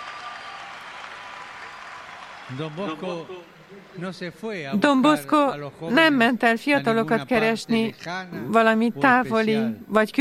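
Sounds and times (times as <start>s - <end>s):
large crowd clapping: 0.0s - 4.7s
speech: 2.5s - 10.1s.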